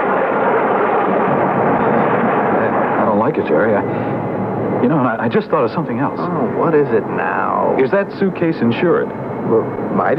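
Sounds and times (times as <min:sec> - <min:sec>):
thunder roaring from a storm at night heard aboard an airplane in turbulence: 0:00.0 - 0:10.0
speech: 0:03.4 - 0:10.1.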